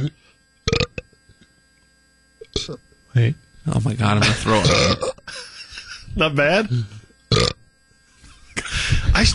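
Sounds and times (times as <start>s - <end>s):
speech: 0.0s - 0.8s, 2.6s - 5.5s, 6.2s - 7.5s, 9.2s - 9.3s
forced deliberate burp: 0.7s - 1.1s, 4.3s - 5.2s, 7.3s - 7.6s
belch: 4.6s - 5.2s.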